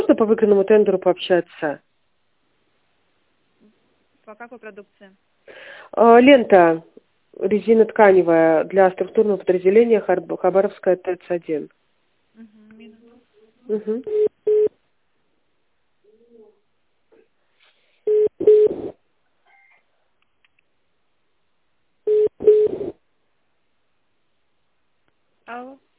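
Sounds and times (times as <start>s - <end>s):
speech: 0.2s - 1.9s, 4.3s - 11.8s, 13.7s - 14.3s, 25.5s - 25.8s
telephone ringing tone on a call being placed: 22.1s - 22.8s.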